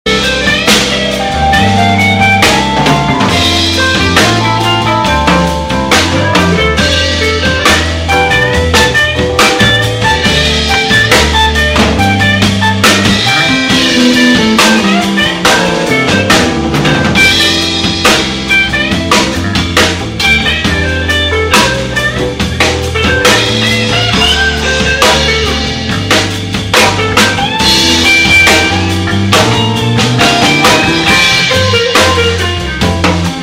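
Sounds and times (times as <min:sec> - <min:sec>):
Fender P Bass: 0:00.0 - 0:33.4.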